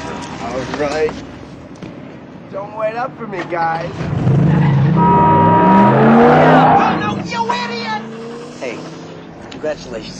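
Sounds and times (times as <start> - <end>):
speech: 0.5 - 1.3, 2.6 - 5.4, 9.6 - 10.1
car engine revving as the vehicle pulls away: 3.9 - 9.3.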